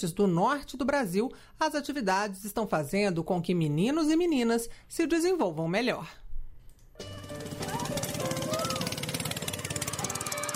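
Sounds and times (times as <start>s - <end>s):
speech: 0.0s - 6.2s
boat motor chugging on the way to the interior of Marajó island, Pará, Brazil: 7.1s - 10.5s.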